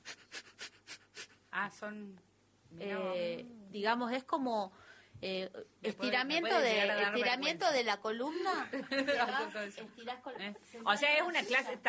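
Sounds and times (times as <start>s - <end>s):
rapid forceful breath-of-fire breathing exhalations: 0.0s - 1.5s
speech: 1.6s - 11.8s.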